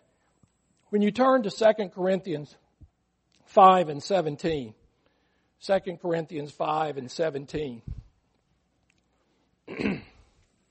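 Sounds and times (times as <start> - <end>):
speech: 0.9 - 2.6, 3.5 - 4.8, 5.6 - 8.0
throat clearing: 9.7 - 10.4.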